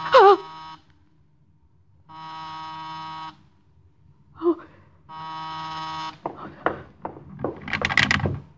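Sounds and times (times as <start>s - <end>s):
door buzzer buzzing: 0.0s - 0.9s, 2.1s - 3.6s, 5.1s - 8.5s
clattering movement: 6.1s - 8.5s.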